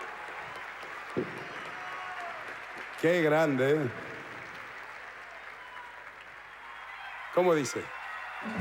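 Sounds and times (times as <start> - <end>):
audience applauding: 0.0 - 8.5
speech: 1.2 - 1.5, 3.0 - 4.1, 7.4 - 8.5.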